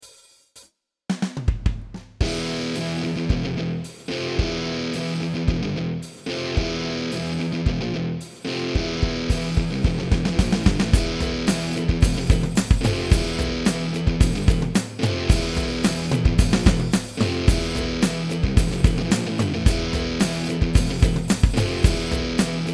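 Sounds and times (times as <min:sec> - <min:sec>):
drums: 0:00.0 - 0:22.7
guitar riff: 0:02.2 - 0:22.7.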